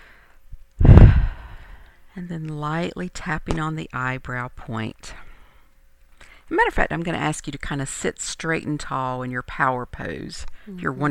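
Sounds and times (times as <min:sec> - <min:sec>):
faint short breath: 0:00.0 - 0:02.0
deep breath exhale during a group tapping relaxation exercise: 0:00.8 - 0:01.9
speech: 0:02.2 - 0:05.2, 0:06.5 - 0:11.0.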